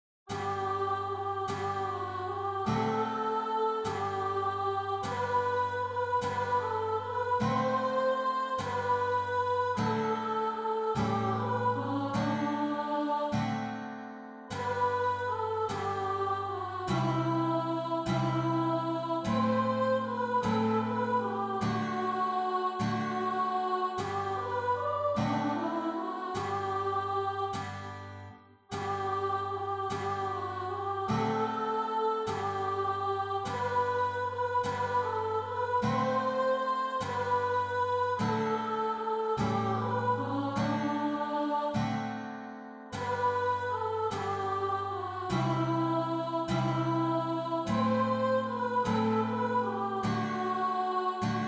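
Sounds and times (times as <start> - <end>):
German folk song: 0.3 - 51.4.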